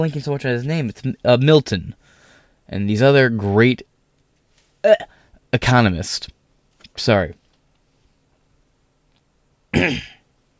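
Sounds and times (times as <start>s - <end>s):
speech: 0.0s - 2.0s, 2.7s - 3.9s, 4.8s - 6.4s, 7.0s - 7.4s, 9.7s - 10.2s
throat clearing bringing up phlegm: 9.7s - 10.2s.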